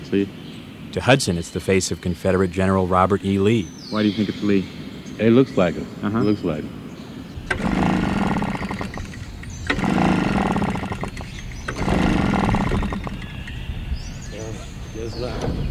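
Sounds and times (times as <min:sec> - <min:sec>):
speech: 0:00.1 - 0:06.8
malfunctioning gasoline-powered leaf blower engine sputtering and surging: 0:07.4 - 0:13.6.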